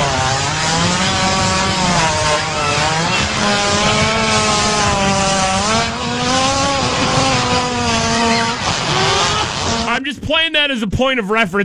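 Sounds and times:
hippo fart: 1.0 - 10.0
speech: 10.4 - 11.6.

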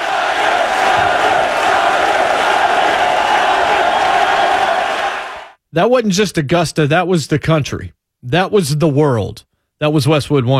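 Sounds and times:
huge golf crowd roaring and cheering: 0.0 - 5.6
speech: 5.8 - 10.5.

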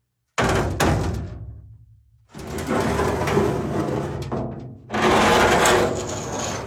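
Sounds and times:
heavy sliding door rumbling and thudding: 2.4 - 6.6.

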